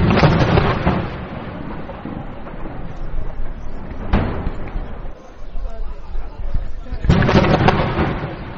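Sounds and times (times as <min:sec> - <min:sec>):
artillery fire booms: 0:00.0 - 0:05.8, 0:06.5 - 0:08.5
voices or crowd noise: 0:04.6 - 0:08.1.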